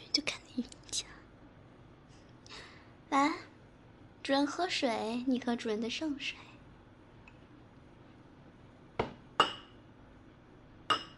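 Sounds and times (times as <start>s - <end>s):
speech: 4.3s - 6.5s
cups clinking together in a toast: 9.0s - 9.8s, 10.9s - 11.1s.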